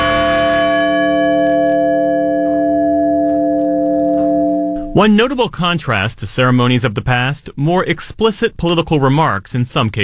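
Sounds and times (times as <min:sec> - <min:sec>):
large memorial bell in Shanksville tolling: 0:00.0 - 0:05.5
speech: 0:05.0 - 0:10.0.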